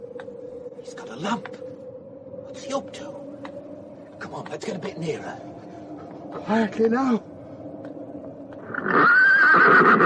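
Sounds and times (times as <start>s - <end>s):
speech: 0.8s - 1.7s, 2.5s - 3.2s, 4.2s - 5.6s, 6.3s - 7.3s
pony whinnying near a graveyard: 8.7s - 10.0s.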